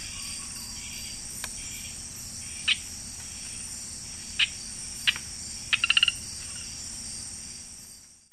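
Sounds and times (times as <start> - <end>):
steady high insect hiss in the Ecuadorian Amazon: 0.0 - 8.3
Eleutherodactylus lanthanites frog chirping and clicking in the Ecuadorian Amazon: 0.1 - 6.7.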